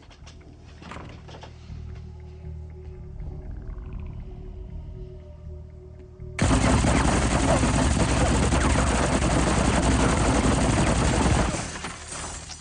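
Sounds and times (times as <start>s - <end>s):
staged machine gun fire for a TV scene: 6.4s - 12.3s.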